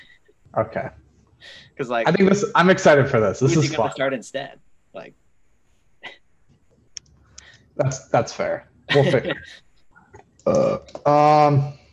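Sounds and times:
speech: 0:00.6 - 0:05.2, 0:07.8 - 0:09.6, 0:10.4 - 0:11.8
laughter: 0:02.1 - 0:04.0, 0:07.8 - 0:09.6
man burping: 0:10.5 - 0:11.7.

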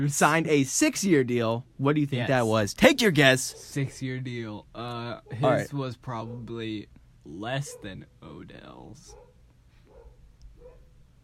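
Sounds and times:
speech: 0:00.0 - 0:09.2
low steady hum: 0:00.0 - 0:11.2
dog barking: 0:07.6 - 0:08.0, 0:09.1 - 0:10.9.

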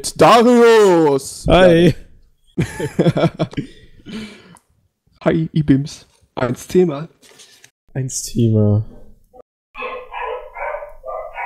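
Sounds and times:
speech: 0:00.0 - 0:02.0, 0:02.6 - 0:04.4, 0:05.2 - 0:09.0
laughter: 0:02.6 - 0:03.8
dog barking: 0:09.8 - 0:11.4.

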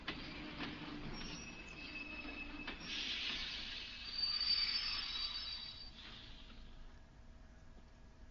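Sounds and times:
train rolling into a station with a rumble: 0:00.0 - 0:07.2
thin metallic train wheel squeals: 0:00.8 - 0:06.2
rushing hiss of an arriving train: 0:02.8 - 0:06.8.

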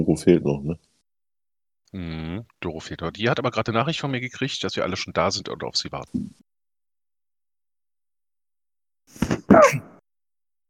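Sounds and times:
speech: 0:00.0 - 0:00.9, 0:01.9 - 0:06.4, 0:09.1 - 0:09.9
sneeze: 0:09.1 - 0:10.0.

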